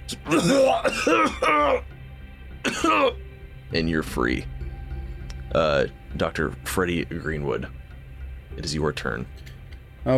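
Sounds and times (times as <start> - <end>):
speech: 0.1 - 1.9, 2.7 - 4.5, 5.5 - 7.8, 8.6 - 10.1
person voicing a man's harsh violent coughing fit: 0.2 - 1.9, 2.6 - 3.2.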